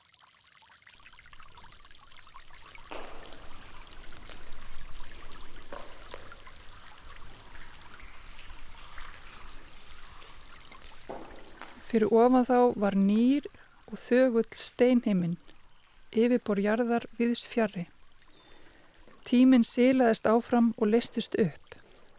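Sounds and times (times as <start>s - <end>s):
steady stream of water trickling: 0.0s - 22.1s
speech: 11.9s - 15.5s, 16.1s - 18.0s, 19.3s - 21.6s.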